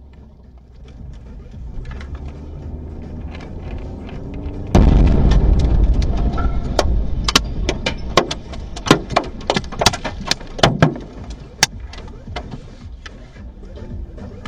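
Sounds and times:
missile explosion on a busy street in Dnipro Ukraine: 4.7s - 9.4s
debris from missile explosion crashing down on cars: 4.7s - 11.6s.

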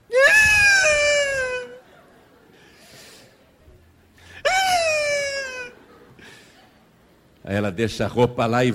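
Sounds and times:
voice imitating a girl crying with wailing cries: 0.0s - 1.9s, 4.4s - 5.9s
speech: 7.5s - 8.7s.

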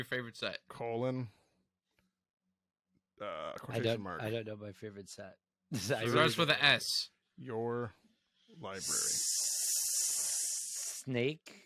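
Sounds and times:
speech: 0.0s - 1.4s, 3.2s - 9.6s, 11.0s - 11.6s
person hissing like a snake: 8.8s - 11.1s.

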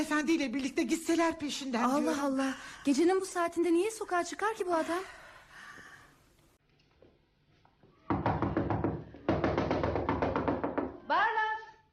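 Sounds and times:
speech: 0.0s - 5.2s
loud rapid knocking on a door: 8.1s - 11.0s.

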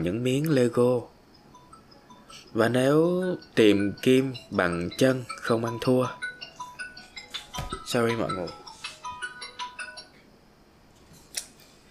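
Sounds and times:
speech: 0.0s - 1.1s, 2.3s - 6.3s, 7.9s - 8.6s
alarm clock ringing with bright metallic chirps: 1.5s - 10.1s.

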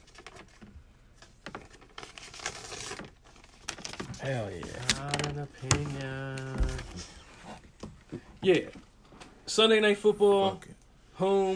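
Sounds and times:
sheet of paper rustling and crinkling: 0.0s - 7.6s
speech: 4.2s - 7.2s, 8.4s - 8.8s, 9.5s - 11.5s.

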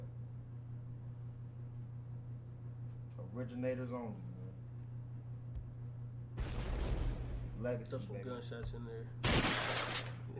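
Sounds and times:
steady low hum: 0.0s - 10.3s
speech: 3.2s - 4.4s, 7.6s - 10.3s
gunshot sound effects: 6.4s - 7.7s, 9.2s - 10.1s.

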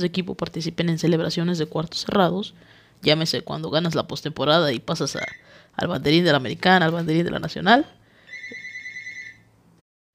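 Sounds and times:
speech: 0.0s - 8.0s
faint hum: 0.0s - 9.8s
electronic telephone ringtone: 8.3s - 9.4s.

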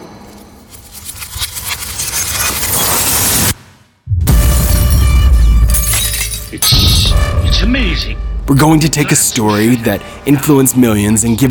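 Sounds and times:
glass falling off a table and shattering: 0.7s - 3.5s, 4.3s - 7.3s
speech: 8.5s - 11.5s.

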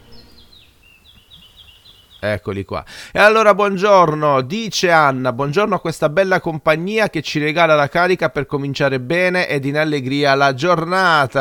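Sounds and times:
small birds chirping: 0.0s - 3.0s
speech: 2.2s - 11.3s.

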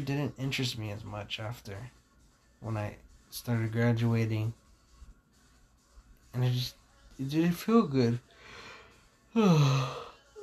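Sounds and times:
speech: 0.0s - 2.0s, 2.6s - 4.6s, 6.3s - 8.6s, 9.3s - 10.1s
person yawning at about 5 o'clock in the morning: 9.3s - 10.4s.

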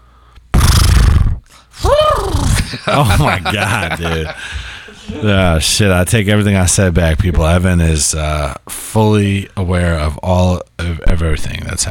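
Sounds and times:
person imitating a horse neigh: 0.6s - 2.7s
laughter: 2.6s - 5.6s
speech: 2.7s - 11.8s.

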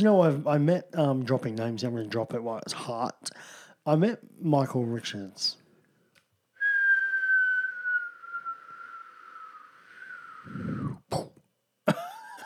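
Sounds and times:
speech: 0.0s - 5.6s, 10.5s - 12.1s
person whistling a sound effect with a slowly falling note: 6.6s - 11.0s
person clearing throat: 10.6s - 12.4s
person coughing: 10.8s - 12.4s.

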